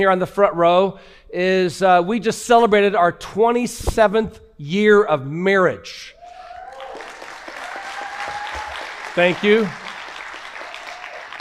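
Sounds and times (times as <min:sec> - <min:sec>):
speech: 0:00.0 - 0:06.2, 0:09.2 - 0:09.8
audience applauding in a large room: 0:06.2 - 0:11.3.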